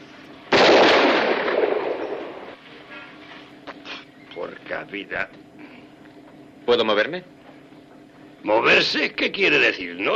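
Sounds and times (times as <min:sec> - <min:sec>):
single gunshot from a fired gun: 0:00.5 - 0:02.5
speech: 0:04.8 - 0:05.6, 0:06.7 - 0:07.3, 0:08.4 - 0:10.1.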